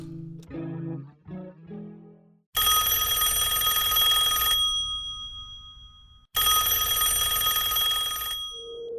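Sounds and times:
loud old-fashioned telephone bell ringing in a home: 2.6s - 8.9s.

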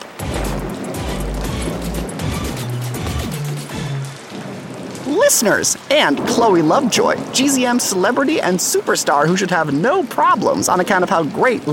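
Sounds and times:
heavy rain pouring: 0.0s - 11.7s
speech: 5.2s - 11.7s.

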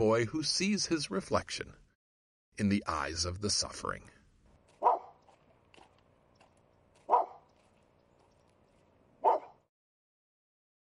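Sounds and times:
speech: 0.0s - 1.8s, 2.6s - 4.2s
lame snaggle-toothed shih tzu barking: 4.8s - 5.2s, 7.0s - 7.6s, 9.2s - 9.7s.

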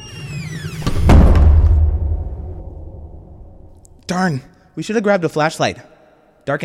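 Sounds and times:
heavy door creaking open with squealing hinge: 0.0s - 2.0s
heavy door shutting with deep booming thud: 0.1s - 3.6s
speech: 4.1s - 6.6s.

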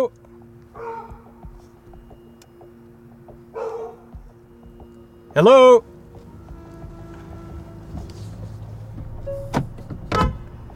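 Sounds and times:
steady low engine-like hum: 0.2s - 10.7s
dog barking: 0.8s - 1.3s, 3.5s - 4.1s
speech: 5.4s - 5.9s.

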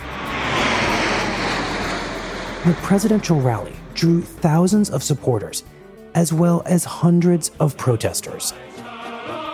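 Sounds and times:
military jets flying overhead at the Lincoln Memorial: 0.0s - 5.9s
speech: 2.6s - 8.9s.

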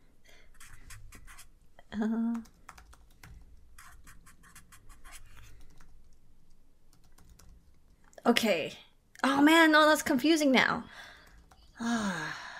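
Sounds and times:
pen writing names by hand on paper: 0.6s - 1.5s, 3.8s - 5.5s
speech: 2.0s - 2.6s, 8.3s - 11.0s, 11.8s - 12.4s.

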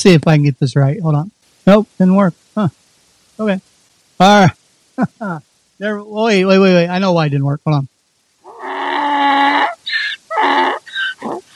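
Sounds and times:
speech: 0.0s - 2.8s, 3.4s - 7.9s
donkey braying: 8.4s - 11.5s.

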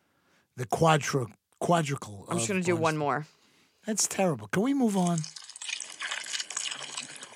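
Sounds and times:
speech: 0.6s - 5.5s
water gurgling and splashing: 4.9s - 7.3s.

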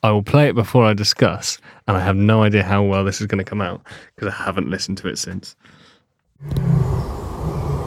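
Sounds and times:
speech: 0.0s - 5.8s, 6.4s - 7.0s
deep rumbling lion roaring: 6.4s - 7.8s.

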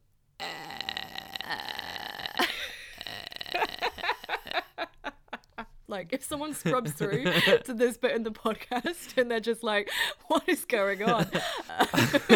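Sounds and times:
person vocally imitating a creature's harsh creaking drone: 0.4s - 4.6s
speech: 1.5s - 1.8s, 5.9s - 12.3s
laughter: 3.6s - 5.7s, 6.4s - 7.8s, 10.8s - 12.3s.

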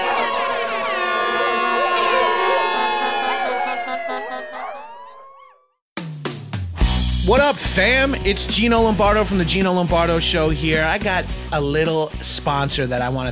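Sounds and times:
air horn blaring: 0.0s - 4.4s
speech: 7.3s - 13.3s.

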